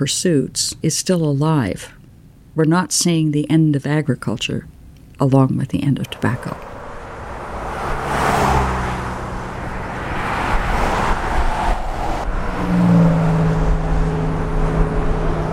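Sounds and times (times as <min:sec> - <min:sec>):
speech: 0:00.0 - 0:02.0, 0:02.6 - 0:06.7
low engine hum of road traffic: 0:05.7 - 0:15.5
cars swishing past in road traffic: 0:05.9 - 0:15.5.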